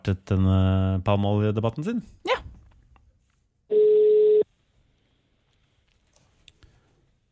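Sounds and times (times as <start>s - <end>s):
speech: 0.1s - 2.4s
outgoing phone call telephone ringing tone: 3.7s - 4.4s
soft handling noises: 4.5s - 7.2s.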